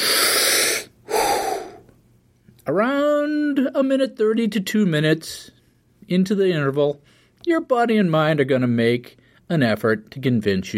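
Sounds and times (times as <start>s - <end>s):
deep abdominal breath blown out forcefully: 0.0s - 1.9s
speech: 2.6s - 10.7s.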